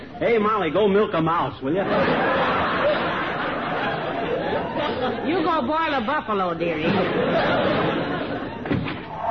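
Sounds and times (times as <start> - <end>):
speech: 0.2 - 2.5, 5.3 - 8.0
laughter: 1.8 - 5.7, 6.8 - 8.8
door slamming shut: 8.6 - 9.2.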